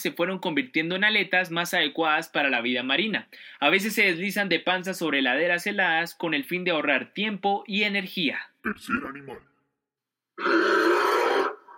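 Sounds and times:
speech: 0:00.0 - 0:09.5
deep rough bear growl: 0:10.4 - 0:11.7.

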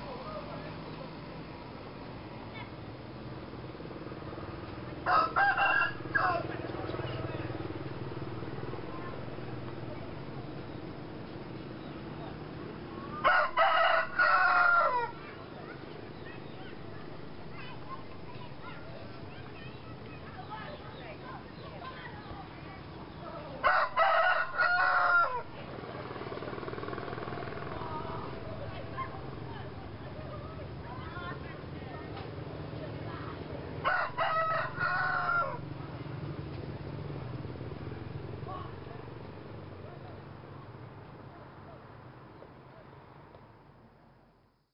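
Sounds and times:
children playing along a riverbank in Laos: 0:00.0 - 0:05.1, 0:06.0 - 0:13.3, 0:14.8 - 0:23.7, 0:24.8 - 0:33.9, 0:34.7 - 0:43.3
soft outdoor hum: 0:00.0 - 0:44.6
rooster crowing: 0:05.0 - 0:06.7, 0:13.1 - 0:15.2, 0:23.6 - 0:25.5, 0:33.8 - 0:35.7.

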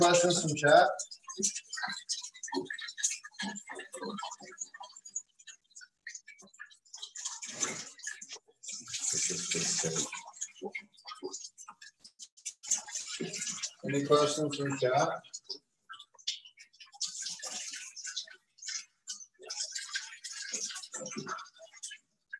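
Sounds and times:
water splashing gush as it is squeezed out: 0:00.0 - 0:04.5, 0:07.0 - 0:11.5, 0:12.6 - 0:15.2, 0:16.9 - 0:22.0
speech: 0:00.0 - 0:04.6, 0:09.2 - 0:11.4, 0:13.2 - 0:15.3
water dripping and trickling as it is squeezed out: 0:00.0 - 0:22.3.

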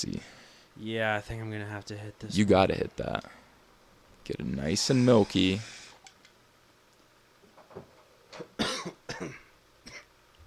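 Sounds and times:
speech: 0:00.0 - 0:03.4, 0:04.2 - 0:05.8, 0:07.8 - 0:09.4
person coughing harshly: 0:08.6 - 0:10.1.

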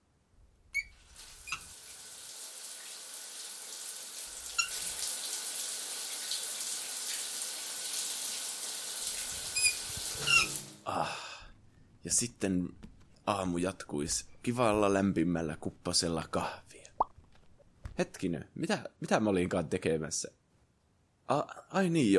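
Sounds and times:
small squeaks and clicks of a shower starting and shutting off: 0:00.7 - 0:01.7, 0:04.6 - 0:04.8, 0:09.6 - 0:10.6
shower running: 0:00.8 - 0:10.9
speech: 0:12.1 - 0:16.7, 0:18.0 - 0:20.4, 0:21.3 - 0:22.1.

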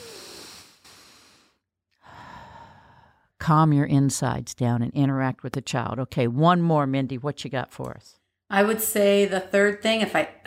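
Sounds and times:
slow deep human breathing: 0:00.0 - 0:03.4
speech: 0:03.4 - 0:10.4.

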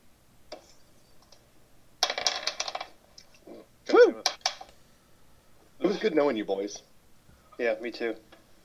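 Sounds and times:
d20 dice rolling on a hard tabletop: 0:02.0 - 0:03.0
speech: 0:06.0 - 0:06.9, 0:07.6 - 0:08.3.

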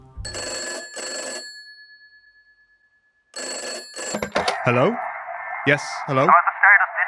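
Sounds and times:
old-style telephone bell ringing: 0:00.2 - 0:04.7
speech: 0:04.3 - 0:06.5.

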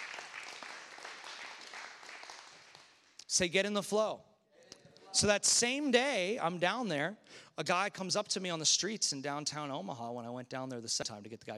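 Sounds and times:
audience clapping hands in praise: 0:00.0 - 0:03.1
speech: 0:03.3 - 0:04.3, 0:05.2 - 0:11.5.

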